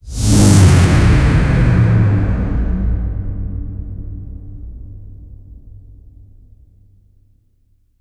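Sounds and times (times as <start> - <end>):
cinematic downer sound effect: 0.0 - 5.1.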